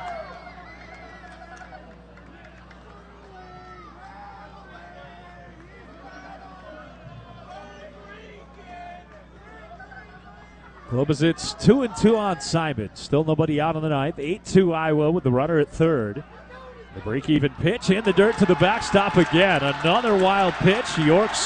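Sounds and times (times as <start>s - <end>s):
speech: 10.9s - 16.4s, 17.0s - 21.4s
ballpark crowd murmuring and stirring: 17.0s - 21.4s.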